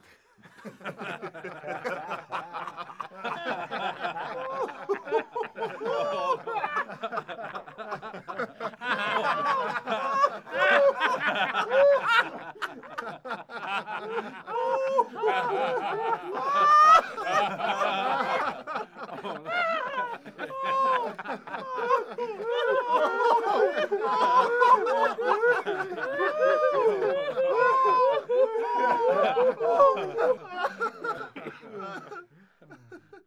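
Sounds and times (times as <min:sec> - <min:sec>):
small male crowd laughing: 0:00.0 - 0:33.2.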